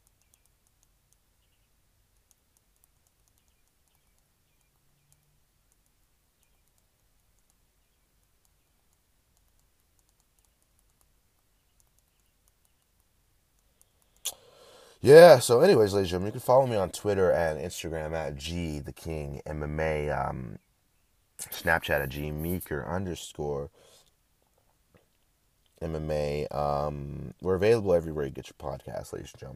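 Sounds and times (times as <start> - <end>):
typing on a computer keyboard: 0.0 - 1.2, 2.2 - 7.6, 8.2 - 13.1
low hiss: 0.0 - 29.5
speech: 15.0 - 20.6, 21.4 - 23.9, 25.8 - 29.5.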